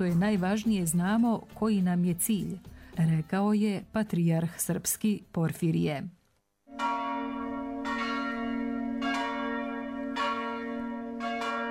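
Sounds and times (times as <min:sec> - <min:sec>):
speech: 0:00.0 - 0:06.2
church bells ringing: 0:06.7 - 0:11.7.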